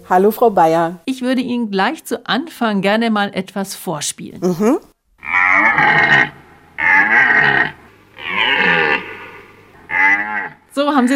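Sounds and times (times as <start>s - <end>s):
speech: 0.1s - 6.4s, 10.8s - 11.1s
rutting red deer stag bellowing: 5.2s - 10.7s.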